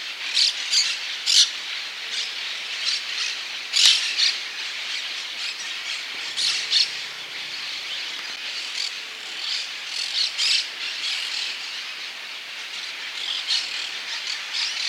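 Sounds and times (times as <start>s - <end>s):
faint bird calls: 0.3s - 14.8s
parakeet giving harsh screechy squawks: 6.2s - 7.8s.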